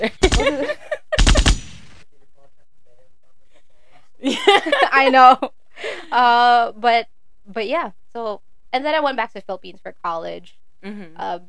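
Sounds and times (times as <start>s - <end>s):
speech: 0.0s - 0.8s, 5.0s - 11.4s
laughter: 0.0s - 1.4s, 4.2s - 6.2s
rapid gunfire sound effect: 0.2s - 2.0s.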